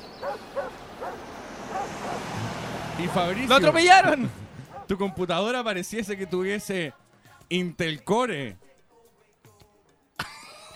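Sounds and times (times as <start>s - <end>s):
dogs barking heard through an opened window: 0.0s - 3.6s, 4.4s - 5.4s
steady outdoor hiss: 0.0s - 6.9s
speech: 0.2s - 8.6s
laughter: 4.0s - 4.8s, 10.2s - 10.7s.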